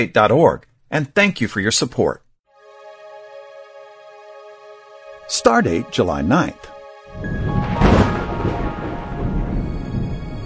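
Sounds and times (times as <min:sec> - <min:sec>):
speech: 0:00.0 - 0:02.2, 0:05.3 - 0:07.4
thunder rumbling from a thunderstorm: 0:07.1 - 0:10.4.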